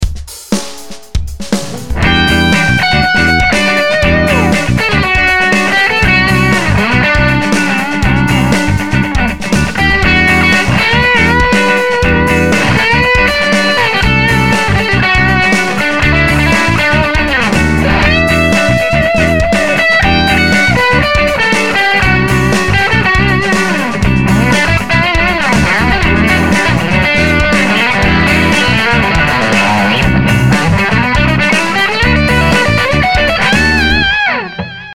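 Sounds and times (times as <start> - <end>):
guitar song through Roland amp: 1.0 - 34.9.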